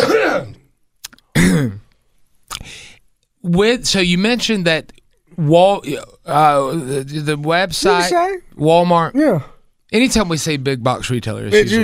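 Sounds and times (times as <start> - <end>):
person clearing throat: 0.0 - 0.6, 1.3 - 1.9
person coughing: 0.0 - 0.6, 1.3 - 1.9
speech: 3.4 - 11.8.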